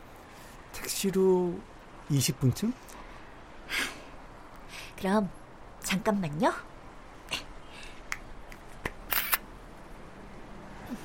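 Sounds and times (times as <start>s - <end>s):
speech: 0.8s - 3.0s, 5.0s - 6.7s
camera shutter clicks photographing a person's face: 9.0s - 9.4s.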